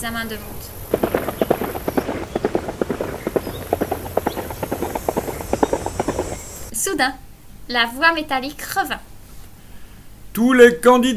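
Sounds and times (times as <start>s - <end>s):
speech: 0.0s - 1.2s, 6.9s - 9.1s, 10.4s - 11.1s
hoofbeats of a horse cantering during a warm-up: 0.3s - 6.7s.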